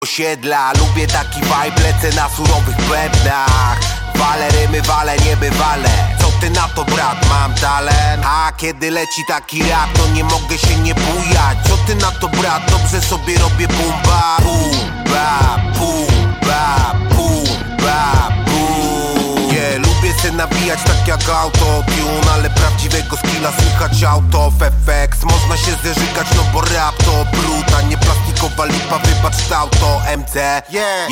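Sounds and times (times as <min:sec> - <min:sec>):
boom bap beat: 0:00.1 - 0:31.0.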